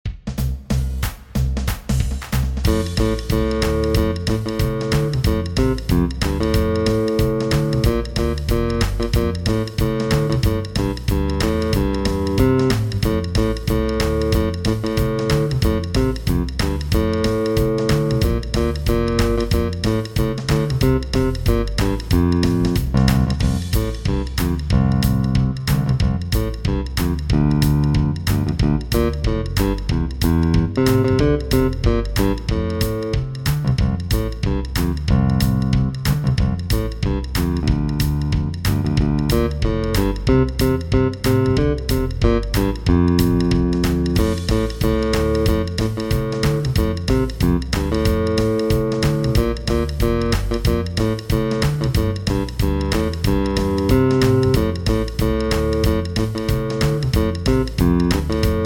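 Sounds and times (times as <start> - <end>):
jazz electric bass solo in F major: 0.3 - 58.6.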